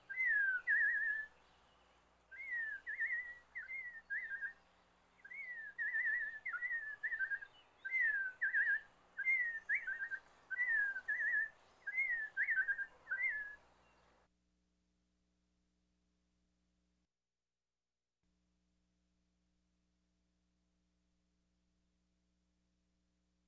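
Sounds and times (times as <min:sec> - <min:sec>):
Robin whistling phrases: 0:00.0 - 0:01.3, 0:02.3 - 0:04.6, 0:05.2 - 0:13.6.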